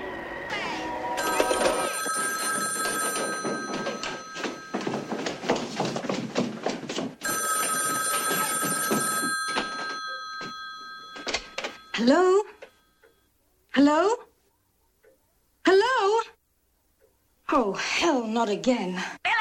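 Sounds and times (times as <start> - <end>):
busy layer of noise: 0.0 - 19.3
loud shrill telephone bell ringing at a sorority house: 1.2 - 5.5, 7.2 - 13.3
speech: 12.0 - 12.3, 17.6 - 19.2.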